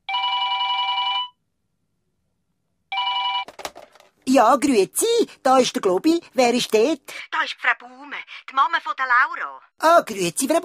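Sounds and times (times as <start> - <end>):
telephone bell ringing: 0.0 - 1.4, 2.9 - 3.5
speech: 4.3 - 10.6.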